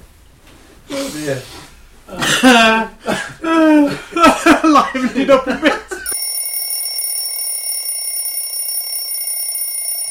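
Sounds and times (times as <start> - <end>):
speech: 1.0 - 5.8
laughter: 2.2 - 6.1
loud continuous metallic alarm bell ringing: 6.1 - 10.1.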